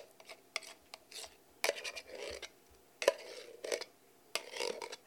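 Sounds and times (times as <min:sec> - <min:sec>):
pumpkin flesh being scraped out: 0:00.2 - 0:05.0.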